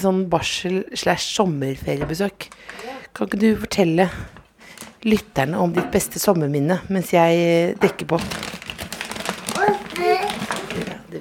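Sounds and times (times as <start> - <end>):
speech: 0.0 - 4.4, 5.0 - 8.6
baby babbling in short rising questioning coos: 9.5 - 10.8.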